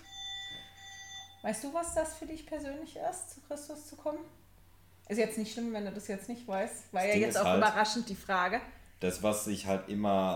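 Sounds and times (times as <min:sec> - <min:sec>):
telephone ringing with electronic tone: 0:00.0 - 0:01.9
speech: 0:01.4 - 0:04.4, 0:05.1 - 0:10.3.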